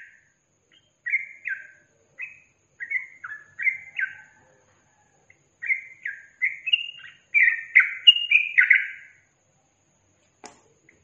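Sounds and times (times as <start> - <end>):
caged yellow-vented bulbul song in tembakan and ropel styles: 0.0 - 4.4, 5.2 - 9.4.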